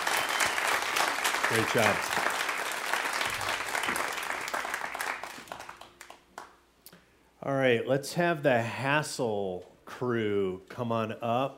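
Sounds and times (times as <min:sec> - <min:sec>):
audience applause: 0:00.0 - 0:06.5
speech: 0:01.5 - 0:02.4, 0:07.4 - 0:11.5.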